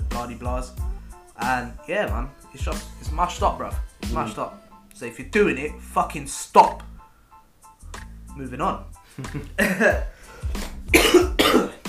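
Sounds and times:
speech: 0:00.2 - 0:06.9, 0:08.4 - 0:11.6
person coughing from a dry throat: 0:10.9 - 0:11.8.

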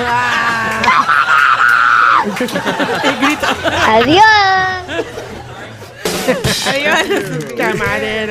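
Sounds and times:
people laughing: 0:00.0 - 0:08.1
person screaming at a piercing high pitch: 0:00.1 - 0:02.2
speech: 0:02.3 - 0:05.3, 0:06.3 - 0:08.2.

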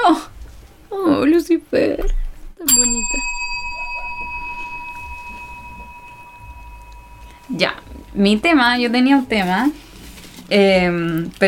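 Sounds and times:
speech: 0:01.2 - 0:03.4, 0:07.5 - 0:09.8, 0:10.5 - 0:11.4
bell ringing: 0:02.7 - 0:08.6.

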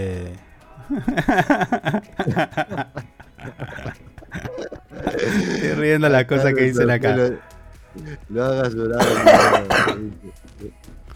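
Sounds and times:
speech: 0:00.0 - 0:03.9, 0:05.1 - 0:10.8
laughter: 0:00.7 - 0:10.7
harsh raspy coughs: 0:02.3 - 0:05.9, 0:09.0 - 0:10.2.

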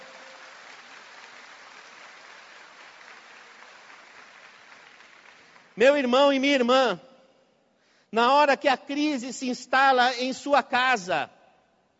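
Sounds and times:
crowd applauding: 0:00.0 - 0:05.8
speech: 0:05.8 - 0:07.1, 0:08.1 - 0:11.4.

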